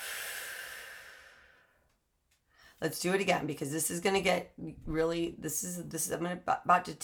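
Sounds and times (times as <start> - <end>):
deep breath: 0.0 - 2.8
speech: 2.8 - 7.0.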